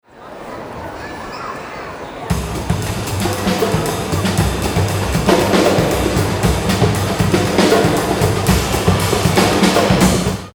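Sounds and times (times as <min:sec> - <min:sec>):
percussion in a large hall: 0:02.3 - 0:10.5.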